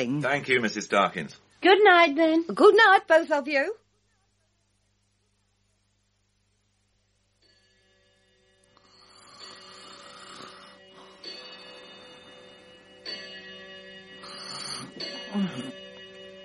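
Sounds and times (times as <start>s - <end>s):
speech: 0.0s - 3.8s
clock striking eleven o'clock with resonant chimes: 7.4s - 16.4s.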